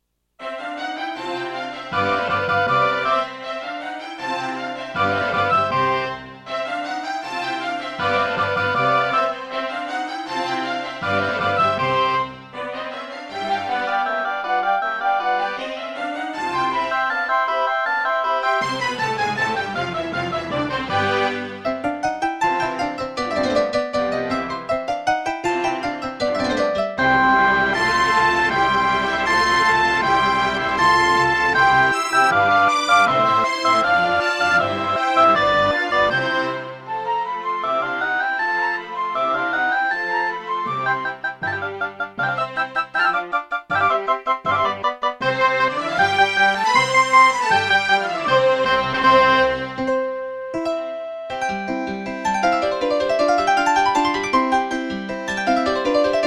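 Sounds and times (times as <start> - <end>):
classical concerto excerpt played through a Gravis UltraSound sound card: 0.0 - 56.2.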